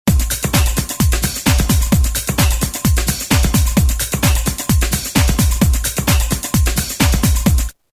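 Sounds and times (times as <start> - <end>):
hip house music at 130 bpm: 0.1 - 7.8.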